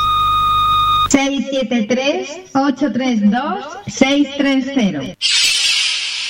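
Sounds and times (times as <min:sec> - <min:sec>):
radio station answering machine beep: 0:00.0 - 0:01.2
speech: 0:01.1 - 0:05.5.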